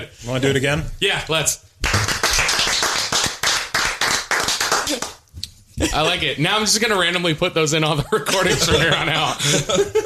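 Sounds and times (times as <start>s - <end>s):
speech: 0.0s - 1.7s, 5.8s - 10.0s
slow clapping from a few people: 1.8s - 5.2s
laughter: 8.0s - 10.0s.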